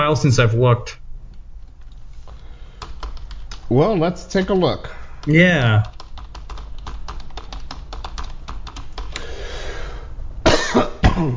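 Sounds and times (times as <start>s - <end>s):
speech: 0.1s - 1.0s, 3.7s - 6.0s, 11.2s - 11.3s
rapid keyboard typing: 1.3s - 9.3s
person coughing: 10.4s - 11.3s.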